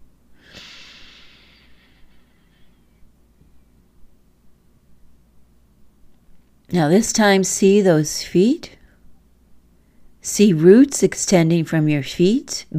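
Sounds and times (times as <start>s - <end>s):
faint steady hiss: 0.0s - 12.7s
deep breath drawn in during guided meditation: 0.4s - 2.9s
speech: 6.7s - 8.8s, 10.2s - 12.7s.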